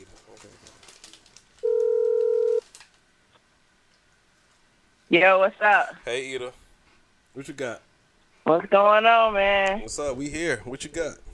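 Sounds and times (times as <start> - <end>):
faint noise: 0.0 - 11.3
steady electronic phone tone: 1.6 - 2.6
speech: 5.1 - 6.6, 7.4 - 11.2.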